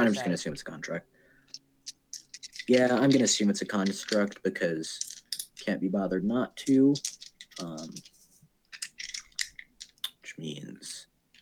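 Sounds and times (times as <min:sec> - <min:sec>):
speech: 0:00.0 - 0:01.6, 0:02.7 - 0:08.1, 0:10.4 - 0:11.0
dice clicking and rattling together: 0:01.5 - 0:05.8, 0:06.4 - 0:10.3.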